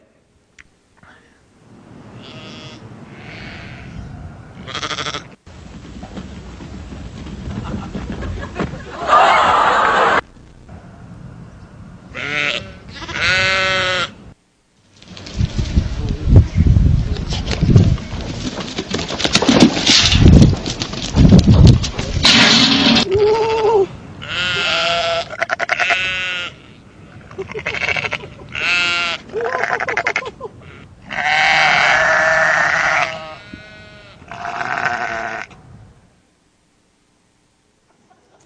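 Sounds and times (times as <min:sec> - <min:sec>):
rumbling noise: 0:00.0 - 0:36.6
several sheep bleating: 0:02.2 - 0:04.0, 0:04.6 - 0:05.4, 0:12.1 - 0:14.2, 0:23.1 - 0:26.8, 0:27.4 - 0:35.6
rustling thumping noise: 0:05.5 - 0:09.0, 0:17.1 - 0:23.1
laughter: 0:07.5 - 0:10.3, 0:27.3 - 0:28.6, 0:29.3 - 0:30.7.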